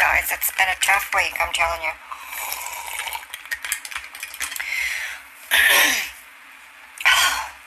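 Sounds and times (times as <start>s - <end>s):
speech: 0.3s - 2.1s
harsh rasping coughs: 5.5s - 6.2s.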